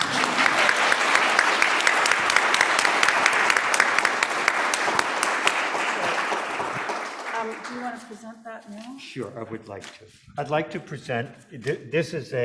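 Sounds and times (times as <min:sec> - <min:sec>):
room full of people clapping: 0:00.0 - 0:08.1
speech: 0:08.6 - 0:12.4.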